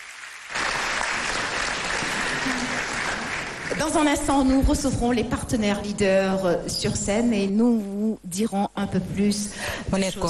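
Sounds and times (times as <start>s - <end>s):
audience applause at a ceremony thanking partners: 0.0s - 4.1s
speech: 3.8s - 10.2s.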